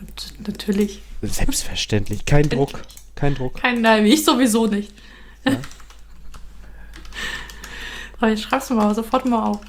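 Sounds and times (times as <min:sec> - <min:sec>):
speech: 0:00.5 - 0:05.8, 0:08.2 - 0:09.6
computer keyboard typing: 0:02.0 - 0:09.6.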